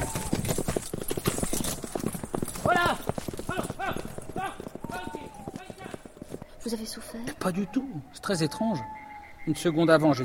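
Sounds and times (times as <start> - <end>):
horses' hooves clip-clopping: 0.0 - 7.6
speech: 6.7 - 10.2.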